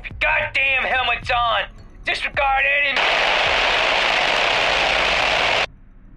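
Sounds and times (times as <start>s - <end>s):
speech: 0.2s - 4.2s
loud steady radio static hissing: 3.0s - 5.7s.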